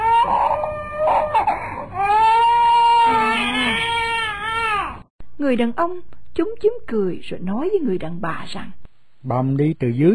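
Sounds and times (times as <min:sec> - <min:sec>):
small child crying alone with wailing sobs: 0:00.0 - 0:05.0
speech: 0:05.5 - 0:10.1.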